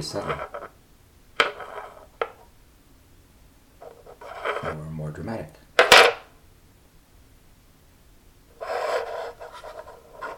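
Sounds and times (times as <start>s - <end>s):
speech: 0.0s - 0.6s, 4.7s - 5.6s
glass scraping and clinking against a bamboo table: 1.4s - 2.4s, 3.8s - 4.7s, 8.6s - 10.3s.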